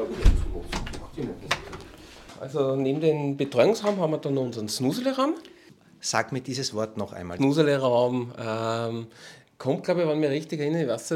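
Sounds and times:
door thudding shut: 0.0 - 1.8
door knocks and clicks as it is opened and closed: 0.1 - 1.9
speech: 2.4 - 11.1.

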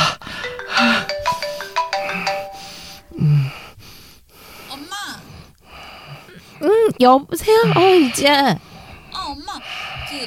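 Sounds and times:
phone ringtone electronic melody: 0.4 - 3.2
speech: 7.0 - 8.7.

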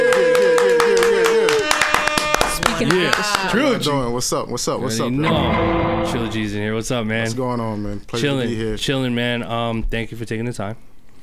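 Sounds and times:
small group clapping hands: 0.0 - 3.7
speech: 2.8 - 10.9.

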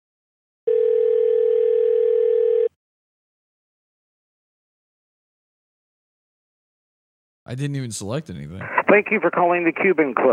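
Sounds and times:
phone ringback tone on an outgoing call to an office line: 0.7 - 2.8
speech: 7.5 - 10.3.

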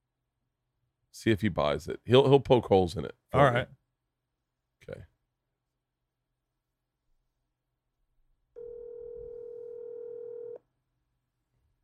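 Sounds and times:
speech: 1.2 - 3.8, 4.8 - 5.1
telephone ringback tone while a call is placed: 8.6 - 10.6.

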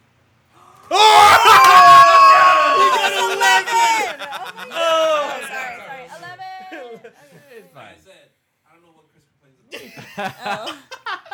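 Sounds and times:
person yelling: 0.9 - 5.7
laughter: 1.0 - 7.6, 9.7 - 11.3
speech: 10.2 - 10.9.

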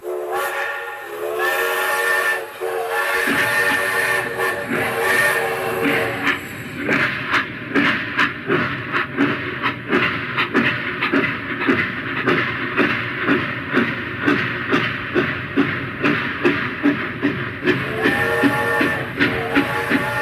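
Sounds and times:
steam train whistle: 0.0 - 6.5, 17.7 - 20.2
steam locomotive chuffing and hissing pulling away from the station: 0.0 - 20.2.

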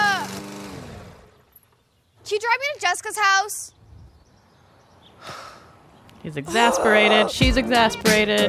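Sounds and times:
lawn mower engine droning as a man mows a lawn: 0.0 - 1.9
speech: 2.3 - 3.8, 6.2 - 8.4.

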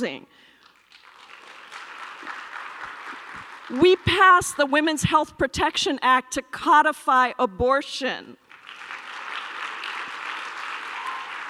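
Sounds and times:
speech: 0.0 - 0.5, 3.7 - 8.4
crowd applauding: 0.6 - 4.7, 8.4 - 11.4.

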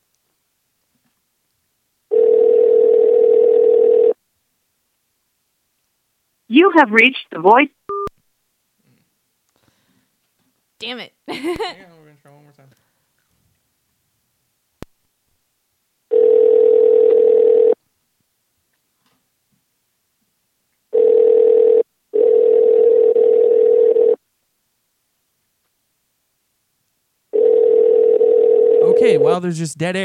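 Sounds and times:
telephone ringback tone: 2.1 - 4.2, 16.1 - 17.8, 20.9 - 24.2, 27.3 - 29.2
speech: 6.5 - 7.8, 29.4 - 30.0
laughter: 11.3 - 11.8.

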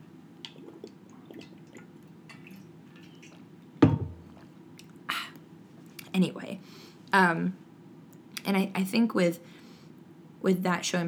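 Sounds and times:
people drinking water: 0.4 - 5.0
clunk perhaps a bottle set down: 3.8 - 4.3
speech: 6.2 - 7.6, 8.4 - 9.5, 10.4 - 11.0.

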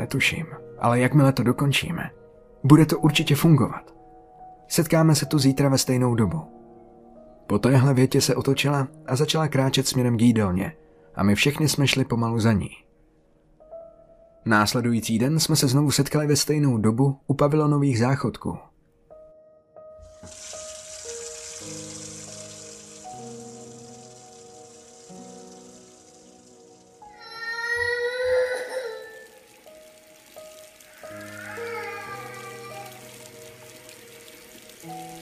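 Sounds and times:
speech: 0.1 - 3.9, 4.7 - 6.6, 7.5 - 12.8, 14.4 - 18.7
water running from a tap at pavilion toilets: 20.0 - 35.2.

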